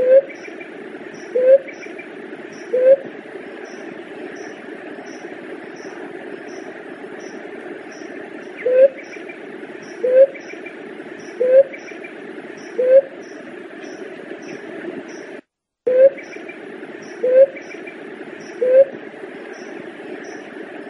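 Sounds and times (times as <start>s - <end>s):
dove cooing: 0.0s - 0.4s, 1.3s - 1.7s, 2.6s - 3.1s, 8.6s - 9.0s, 9.8s - 10.4s, 11.3s - 11.8s, 12.6s - 13.1s, 15.9s - 16.3s, 17.1s - 17.7s, 18.5s - 19.0s
hiss: 0.0s - 20.8s.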